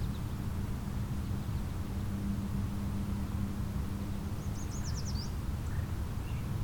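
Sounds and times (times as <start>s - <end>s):
steady rumbling wind or traffic noise: 0.0s - 6.6s
bird singing a high phrase of quick rising notes: 4.4s - 6.5s.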